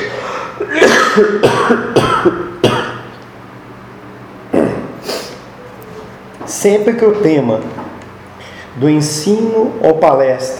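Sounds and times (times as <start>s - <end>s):
speaker coughing harshly during a talk: 0.0s - 3.1s, 4.5s - 5.4s
speech: 1.2s - 2.4s, 6.6s - 7.8s, 8.8s - 10.5s.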